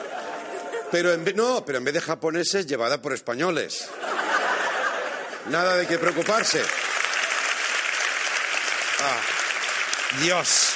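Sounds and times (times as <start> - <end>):
laughter: 0.0 - 1.3, 3.9 - 6.7
speech: 0.9 - 4.1, 5.4 - 6.8, 9.0 - 9.3, 10.1 - 10.7
audience applause: 5.6 - 10.7.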